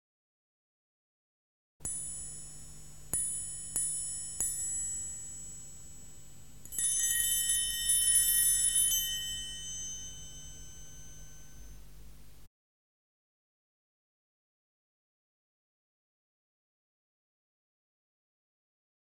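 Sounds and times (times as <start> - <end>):
metal percussion triangle ringing: 1.8 - 12.1.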